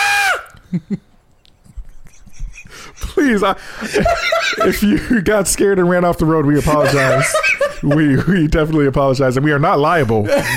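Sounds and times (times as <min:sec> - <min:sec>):
goat screaming: 0:00.0 - 0:00.5
laughter: 0:00.6 - 0:05.5, 0:06.4 - 0:08.6, 0:10.2 - 0:10.5
speech: 0:00.7 - 0:01.1, 0:03.2 - 0:10.5.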